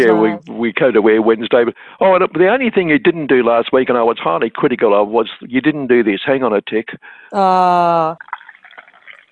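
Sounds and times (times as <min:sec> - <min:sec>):
person singing or humming a loud steady note: 0:00.0 - 0:00.5
speech: 0:00.0 - 0:08.3
Vietnamese green tea being poured into a cup: 0:08.2 - 0:09.3.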